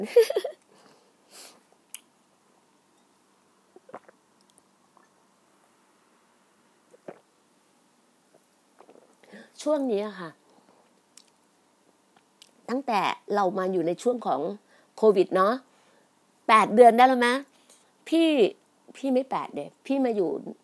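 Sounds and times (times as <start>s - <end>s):
speech: 0.0s - 0.5s, 9.6s - 10.4s, 12.7s - 15.7s, 16.5s - 17.5s, 18.1s - 20.6s
person sipping water: 3.7s - 5.2s, 6.9s - 7.3s, 8.3s - 9.3s.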